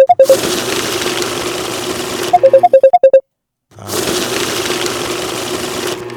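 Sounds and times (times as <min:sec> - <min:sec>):
short electronic beeps from a money counter: 0:00.0 - 0:00.4, 0:02.3 - 0:03.2
money counter whirring as it counts banknotes: 0:00.0 - 0:03.2, 0:03.8 - 0:06.1.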